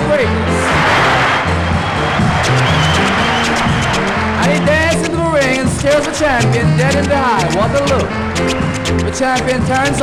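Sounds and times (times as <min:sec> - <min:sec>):
large crowd roaring and shouting: 0:00.3 - 0:04.8
speech: 0:05.8 - 0:10.0.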